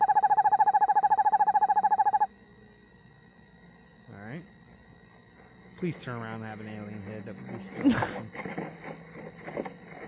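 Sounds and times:
owl calling inside a birdhouse: 0.0 - 2.3
speech: 5.8 - 9.6.

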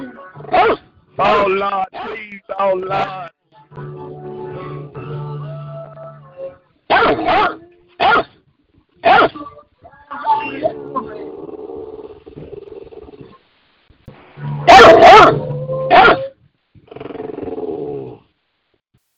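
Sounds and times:
dog barking aggressively: 0.5 - 0.8, 6.9 - 8.4, 9.0 - 9.4, 14.7 - 16.3
speech: 0.6 - 4.0
dog growling: 10.5 - 13.4, 14.9 - 18.3.

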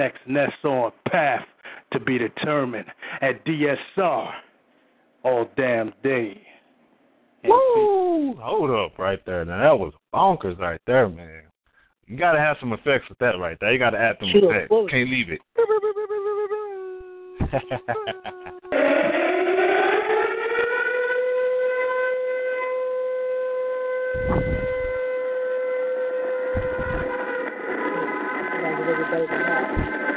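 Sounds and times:
speech: 0.0 - 4.4, 5.2 - 6.5, 7.4 - 11.5, 12.1 - 16.0, 17.5 - 19.0, 29.1 - 29.8
laughter: 15.6 - 16.6, 17.4 - 18.8
ambulance siren wailing: 18.7 - 30.0.

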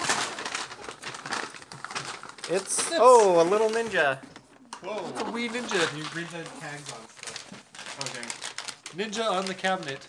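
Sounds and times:
wrapping paper crinkling and tearing as a gift is unwrapped: 0.0 - 4.2, 5.2 - 10.0
speech: 2.5 - 7.2, 8.0 - 10.0.

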